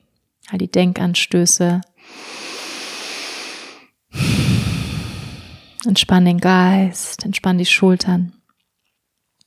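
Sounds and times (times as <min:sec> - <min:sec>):
speech: 0:00.4 - 0:02.4, 0:05.8 - 0:08.4
slow deep breath in and out: 0:02.0 - 0:05.8.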